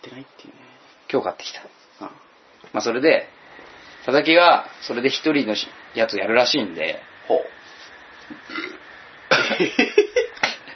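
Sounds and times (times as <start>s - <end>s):
speech: 0.0s - 3.3s, 4.0s - 7.5s, 9.6s - 9.9s
guttural burp after drinking alcohol: 8.3s - 9.6s.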